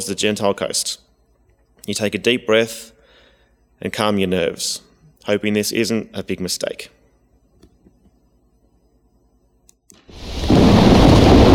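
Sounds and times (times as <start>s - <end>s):
speech: 0.0s - 1.1s, 1.8s - 3.0s, 3.8s - 7.0s
loud dense storm roar: 10.1s - 11.5s
rumbling thunder: 10.1s - 11.5s
rushing rain: 10.1s - 11.5s.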